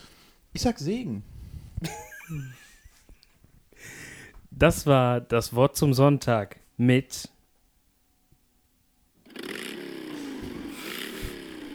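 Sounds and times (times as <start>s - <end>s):
speech: 0.6s - 2.6s, 3.8s - 7.3s
laughter: 1.8s - 3.0s
small two-stroke engine of chainsaw or moped revving: 9.2s - 11.7s.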